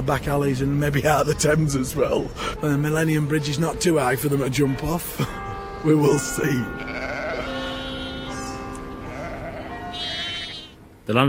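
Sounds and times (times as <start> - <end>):
speech: 0.0 - 6.9, 11.1 - 11.2
several sheep bleating: 6.6 - 10.8.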